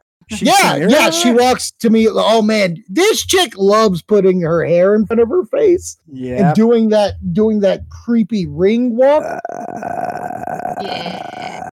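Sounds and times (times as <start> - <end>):
speech: 0.3 - 11.7
loud drawn-out belch-like noise: 9.2 - 11.7.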